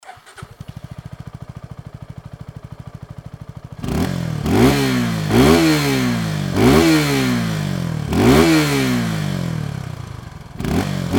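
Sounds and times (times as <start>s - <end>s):
Suzuki Gixxer SF250 motorcycle engine running normally: 0.0s - 11.1s.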